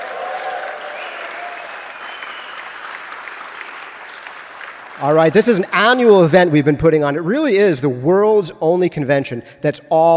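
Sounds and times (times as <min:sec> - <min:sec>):
faint cheers: 0:00.0 - 0:03.0
crowd applauding: 0:00.0 - 0:05.8
speech: 0:05.0 - 0:10.1.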